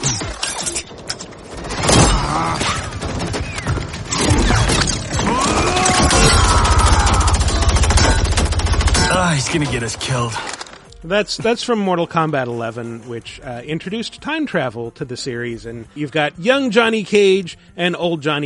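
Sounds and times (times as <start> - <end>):
long rapid rattling burst of video game gunfire: 1.3 - 10.4
video game gunshots: 1.3 - 10.5
speech: 9.5 - 18.4.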